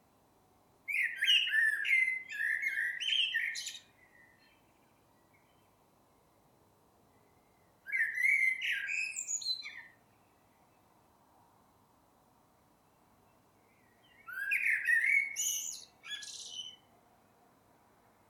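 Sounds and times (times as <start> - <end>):
Eurasian blackbird Turdus merula singing a mellow fluted warble: 0.9 - 5.8, 7.2 - 10.5, 13.6 - 16.9.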